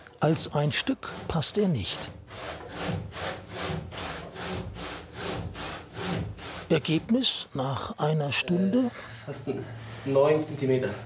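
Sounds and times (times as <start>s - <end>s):
speech: 0.2s - 3.0s, 6.7s - 11.0s
very thin hand saw cutting through wood: 0.2s - 7.4s.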